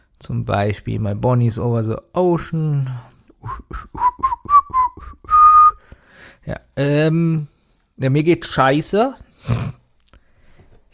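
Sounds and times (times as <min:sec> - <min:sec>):
speech: 0:00.2 - 0:04.1, 0:06.4 - 0:09.6
person whistling a cheerful little tune: 0:03.4 - 0:06.0.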